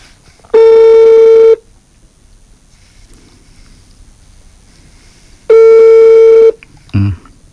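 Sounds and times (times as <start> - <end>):
ringing tone of an outgoing telephone call: 0.5 - 1.6, 5.5 - 6.6.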